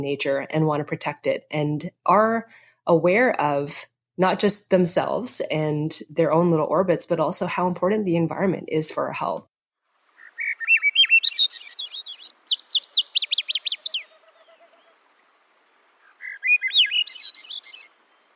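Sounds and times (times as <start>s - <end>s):
speech: 0.0s - 9.5s
bird singing: 10.1s - 18.3s.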